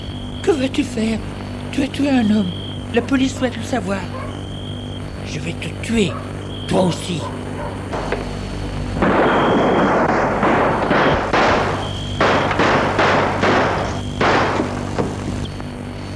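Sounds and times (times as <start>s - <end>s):
speech: 0.5s - 4.2s, 5.3s - 8.0s
rifle gunshots: 7.9s - 15.3s.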